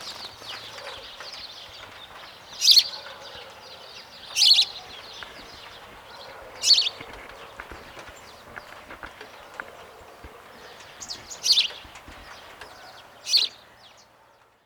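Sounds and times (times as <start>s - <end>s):
house sparrow Passer domesticus chirping: 0.0s - 14.2s.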